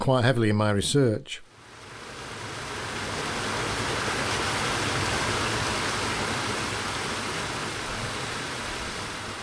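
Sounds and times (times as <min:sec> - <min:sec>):
speech: 0:00.0 - 0:01.5
river water pouring through a lock in Doncaster UK: 0:01.6 - 0:09.4.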